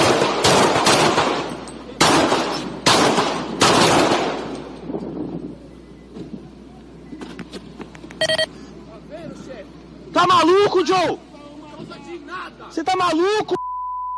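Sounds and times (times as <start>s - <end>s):
gunshots fired by a police officer: 0.0s - 4.5s
short electronic beep: 8.2s - 8.5s, 13.6s - 14.1s
speech: 10.9s - 11.3s, 12.3s - 13.6s.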